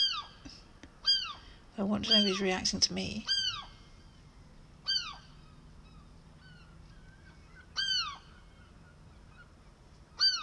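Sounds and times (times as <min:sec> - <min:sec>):
bird squawking on a house roof: 0:00.0 - 0:00.4, 0:01.0 - 0:01.4, 0:02.0 - 0:02.5, 0:03.2 - 0:03.8, 0:04.8 - 0:09.6, 0:10.2 - 0:10.4
speech: 0:01.8 - 0:03.4.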